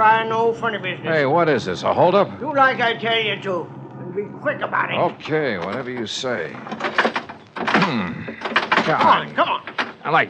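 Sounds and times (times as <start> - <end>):
speech: 0.0 - 7.2, 7.9 - 10.2
stuck car door rattling and thunking as it is tugged: 5.6 - 10.2.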